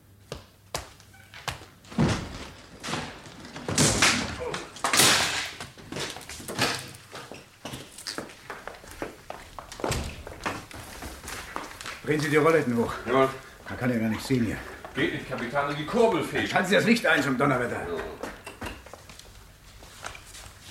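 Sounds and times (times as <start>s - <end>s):
door being broken in: 1.9s - 7.1s
speech: 12.1s - 18.2s.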